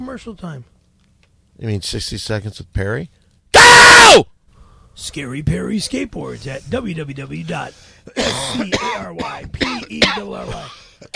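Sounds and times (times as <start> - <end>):
speech: 0.0 - 0.8, 1.6 - 4.3, 5.0 - 11.1
person coughing from a green bean stuck in the throat: 8.1 - 11.1.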